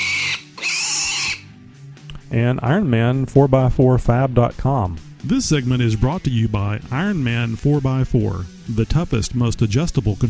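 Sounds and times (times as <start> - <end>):
pig squealing and oinking: 0.0 - 1.5
speech: 2.3 - 10.2.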